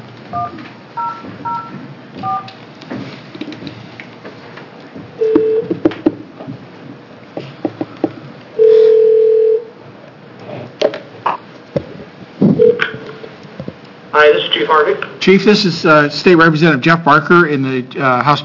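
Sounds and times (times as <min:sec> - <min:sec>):
low noise: 0:00.0 - 0:18.4
telephone keypad beeps: 0:00.4 - 0:02.5, 0:05.2 - 0:05.8
speech: 0:14.2 - 0:18.4.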